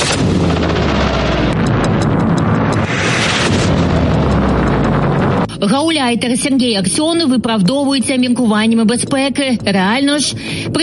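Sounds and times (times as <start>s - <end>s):
loud continuous rumbling blasts of explosions: 0.0s - 6.7s
speech: 5.6s - 10.8s.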